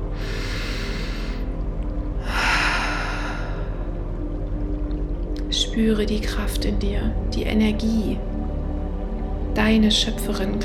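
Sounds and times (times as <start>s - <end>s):
deep breaths taken during a guided meditation: 0.0s - 4.3s
steady low drone: 0.0s - 10.6s
speech: 5.8s - 8.3s, 9.6s - 10.6s.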